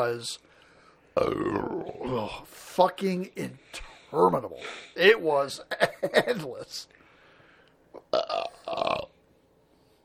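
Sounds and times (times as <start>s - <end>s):
speech: 0.0s - 0.5s, 1.2s - 7.0s, 8.0s - 9.1s
loud croaking belch: 1.2s - 2.2s, 8.0s - 9.2s.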